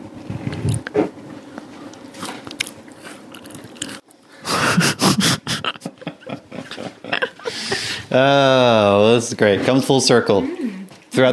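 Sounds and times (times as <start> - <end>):
biting and chewing crunchy homemade biscuit: 2.1 - 4.0
laughter: 4.5 - 8.7
speech: 8.1 - 10.6.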